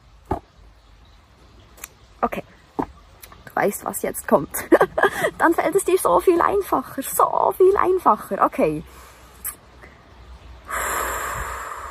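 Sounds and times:
speech: 0:02.2 - 0:02.6, 0:03.6 - 0:09.1
deep breath: 0:10.7 - 0:11.8.

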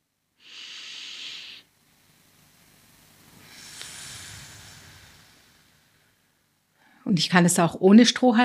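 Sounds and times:
person breathing in during a slow breathing exercise: 0:00.4 - 0:01.7, 0:03.4 - 0:07.0
speech: 0:07.1 - 0:08.4.

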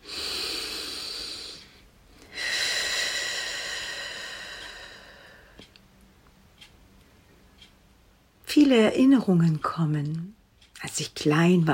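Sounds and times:
slow human breathing: 0:00.0 - 0:05.8
speech: 0:08.6 - 0:10.4, 0:11.0 - 0:11.7.

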